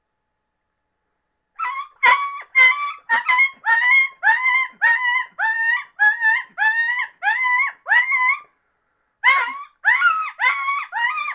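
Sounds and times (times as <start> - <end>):
coyote pup whimpering in distress: 1.6 - 8.5, 9.2 - 11.3.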